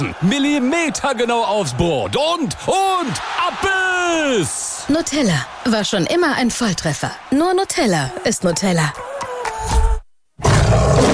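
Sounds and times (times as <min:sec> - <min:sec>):
speech: 0:00.0 - 0:09.8
lion roaring: 0:10.4 - 0:11.1.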